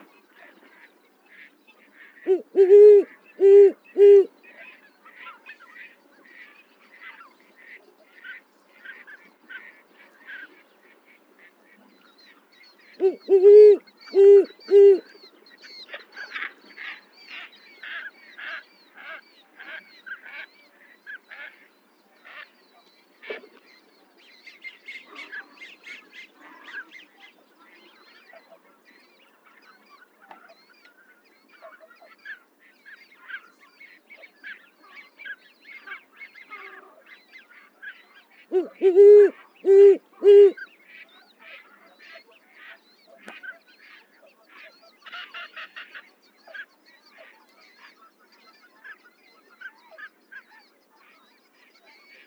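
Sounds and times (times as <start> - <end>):
owl: 2.3 - 4.3, 13.0 - 15.0, 38.5 - 40.6.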